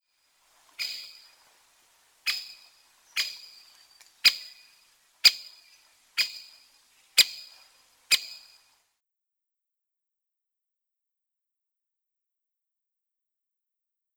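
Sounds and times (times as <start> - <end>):
great spotted woodpecker Dendrocopos major: 0.7 - 1.4, 2.2 - 8.6.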